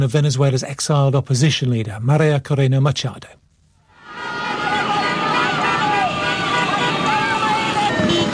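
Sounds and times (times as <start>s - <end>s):
speech: 0.0s - 3.4s
crowd voices of flag-waving demonstrators at an opposition protest in Caracas, Venezuela: 4.0s - 8.3s
horn-like tones: 4.2s - 8.3s
engines of dozens of motorbikes and cars of demonstrators at an opposition protest in Caracas, Venezuela: 5.5s - 8.3s.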